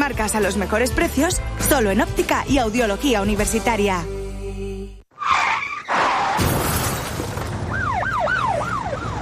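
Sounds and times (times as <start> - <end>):
speech: 0.1 - 4.2
car crash impacts: 5.9 - 7.8
glass shattering: 6.3 - 7.6
emergency siren wailing: 7.6 - 9.2.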